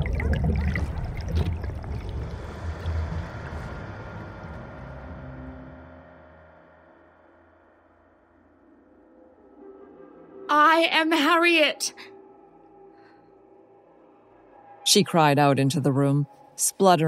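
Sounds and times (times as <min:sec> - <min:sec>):
underwater bubbles: 0:00.0 - 0:04.3
underwater rush of churning water: 0:00.0 - 0:05.0
speech: 0:10.8 - 0:12.1, 0:14.9 - 0:17.0.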